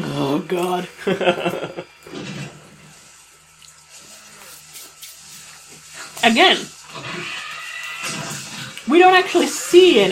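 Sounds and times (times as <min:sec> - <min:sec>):
speech: 0:00.2 - 0:01.7, 0:06.3 - 0:06.8, 0:08.9 - 0:10.1
laughter: 0:01.0 - 0:02.0
guttural film raptor growl with grunting snarls: 0:06.5 - 0:10.1.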